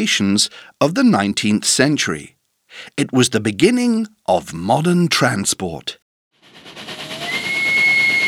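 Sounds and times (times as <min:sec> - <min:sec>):
speech: 0:00.0 - 0:06.0
steam train rumbling on rails: 0:06.4 - 0:08.2.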